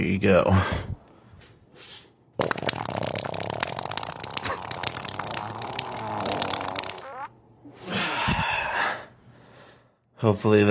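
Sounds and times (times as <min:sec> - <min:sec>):
speech: 0:00.0 - 0:00.9, 0:10.2 - 0:10.6
long wet sputtering fart from a played video: 0:02.4 - 0:07.4
breathy gasp: 0:07.8 - 0:10.0.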